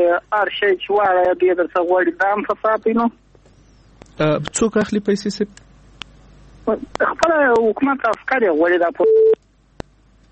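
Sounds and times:
speech: 0.1 - 3.2, 4.2 - 5.7, 6.7 - 9.4
telephone busy tone after a call is disconnected: 9.0 - 9.4.

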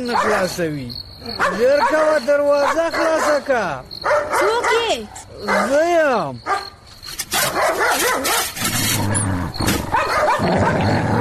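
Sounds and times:
dog barking near a door: 0.0 - 0.5, 1.4 - 3.4, 4.0 - 5.8, 6.4 - 6.8, 7.4 - 8.6, 9.9 - 10.9
speech: 0.0 - 6.7
dog growling near a door: 8.4 - 11.1.

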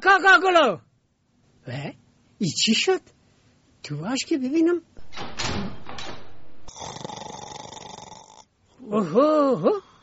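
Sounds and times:
speech: 0.0 - 0.8, 1.6 - 3.2, 3.8 - 5.4, 8.8 - 9.9
person snoring while asleep: 6.7 - 8.5.

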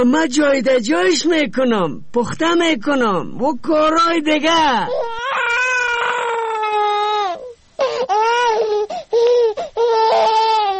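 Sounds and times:
speech: 0.0 - 5.1
baby wailing and sobbing after waking up: 4.8 - 10.7.

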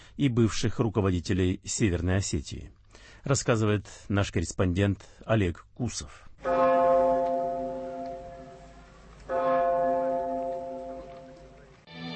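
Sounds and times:
speech: 0.2 - 6.6
large bell tolling over former School No. 1 in Beslan: 6.4 - 11.8.

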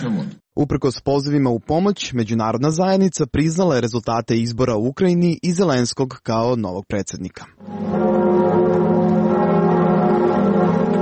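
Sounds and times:
speech: 0.0 - 8.5
large cathedral church bells ringing: 7.6 - 10.9.

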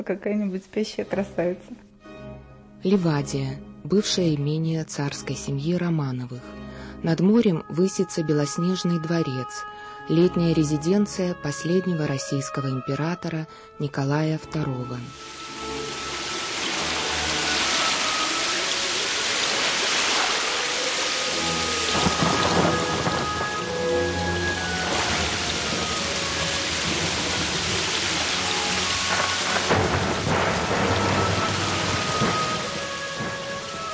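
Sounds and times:
speech: 0.0 - 1.8, 2.8 - 15.4
heavy rain pouring: 15.1 - 33.9
low rumbles of thunder: 15.1 - 33.9.

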